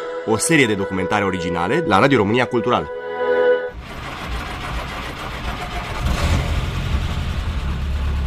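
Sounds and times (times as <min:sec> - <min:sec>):
speech: 0:00.3 - 0:03.0
classic four-cylinder car engine starting and idling: 0:03.7 - 0:08.2.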